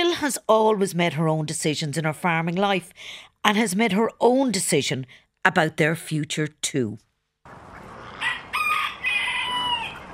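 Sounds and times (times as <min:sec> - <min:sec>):
speech: 0:00.2 - 0:07.6
rooster crowing: 0:07.8 - 0:10.1.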